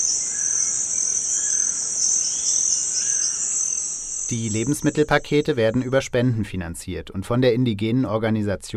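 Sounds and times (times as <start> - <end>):
dense high insect drone in Amazon rainforest: 0.0 - 6.0
speech: 4.3 - 8.7.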